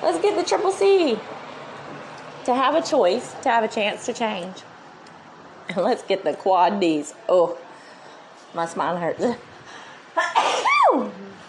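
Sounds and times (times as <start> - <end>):
speech: 0.0 - 1.4, 2.4 - 4.7, 5.7 - 7.6, 8.5 - 9.5
loud human sneeze: 10.2 - 11.4.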